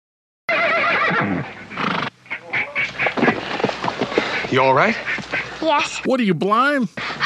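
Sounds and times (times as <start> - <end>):
horse neighing: 0.5 - 4.2
horse hooves clopping: 0.7 - 6.0
speech: 4.5 - 7.2.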